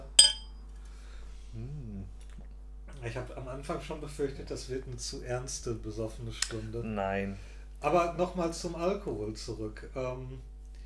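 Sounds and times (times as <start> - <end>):
glasses clinking during a toast: 0.0 - 0.5
speech: 3.0 - 10.5.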